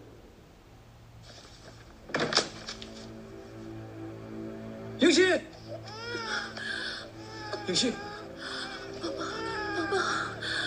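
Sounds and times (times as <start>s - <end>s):
speech: 5.1s - 5.6s, 7.7s - 8.1s
person crying and sobbing in high-pitched wails: 5.6s - 10.6s.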